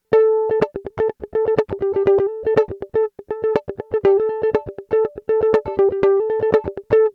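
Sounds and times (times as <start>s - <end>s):
high single electric mandolin: 0.0s - 7.1s.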